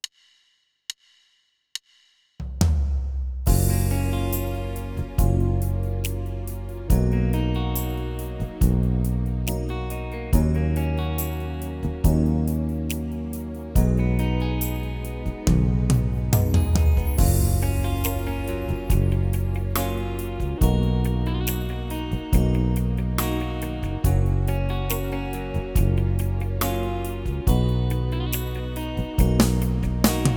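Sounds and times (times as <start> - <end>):
16beat ballad style on a Yamaha Tyros3 keyboard: 3.5 - 30.3.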